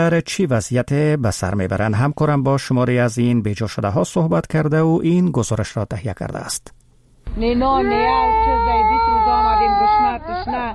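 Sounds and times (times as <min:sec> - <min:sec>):
speech: 0:00.0 - 0:06.8, 0:07.4 - 0:10.7
hungry baby crying: 0:07.8 - 0:10.7.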